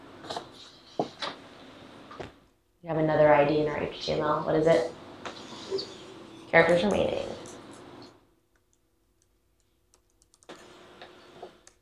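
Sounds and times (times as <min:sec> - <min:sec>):
speech: 0:02.9 - 0:05.0, 0:06.5 - 0:07.3
faint computer keyboard typing code: 0:08.6 - 0:11.8.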